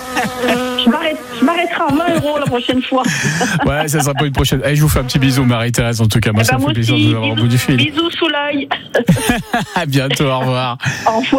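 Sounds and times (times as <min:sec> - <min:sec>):
small fly buzzing: 0:00.0 - 0:04.0, 0:04.7 - 0:05.7, 0:06.4 - 0:08.3
laughter: 0:00.0 - 0:11.3
speech: 0:00.2 - 0:11.3.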